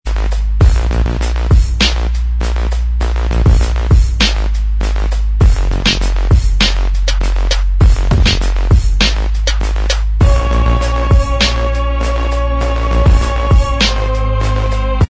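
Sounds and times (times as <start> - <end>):
instrumental backing track: 0.1 - 15.0.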